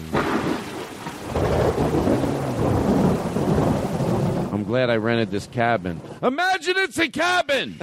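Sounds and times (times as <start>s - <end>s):
steady heavy rain: 0.0s - 6.4s
loud rolling thunder: 0.1s - 6.2s
speech: 4.7s - 7.8s.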